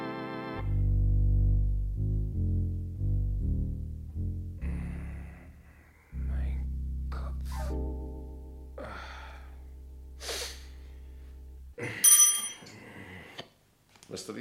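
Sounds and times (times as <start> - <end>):
low steady hum: 0.6 - 13.3
small bell rung to summon a servant: 12.0 - 12.7.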